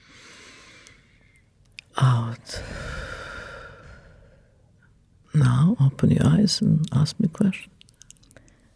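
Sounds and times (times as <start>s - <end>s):
deep breath in through the nose during a breathing exercise: 0.0s - 1.5s, 2.6s - 4.7s
speech: 5.4s - 7.8s.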